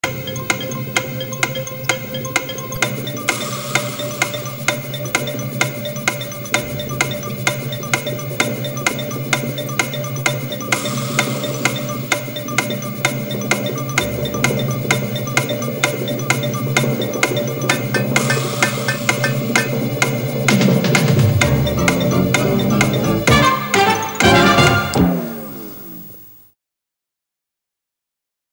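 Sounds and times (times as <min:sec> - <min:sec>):
TV countdown clock ticking: 0:00.0 - 0:25.7.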